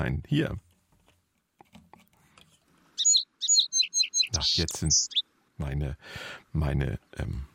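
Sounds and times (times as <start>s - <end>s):
speech: 0.0s - 0.6s, 4.4s - 7.5s
sparrows chirping: 3.0s - 5.2s.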